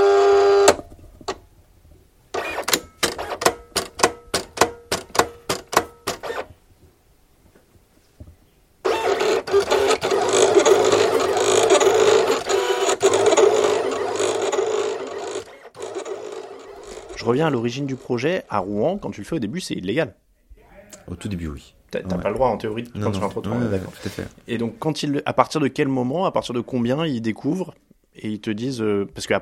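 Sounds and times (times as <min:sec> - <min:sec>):
machine cutting 30 cm cement tiles with a rasping whir: 0:00.0 - 0:00.8, 0:02.4 - 0:06.5, 0:08.8 - 0:18.1
sharp mechanical clicks of a tile cutting machine: 0:02.3 - 0:06.5, 0:08.8 - 0:17.3
speech: 0:17.3 - 0:20.2, 0:21.1 - 0:29.4.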